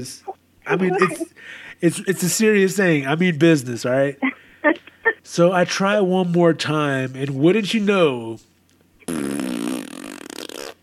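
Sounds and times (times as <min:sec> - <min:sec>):
speech: 0:00.0 - 0:08.5
fart: 0:09.0 - 0:10.8.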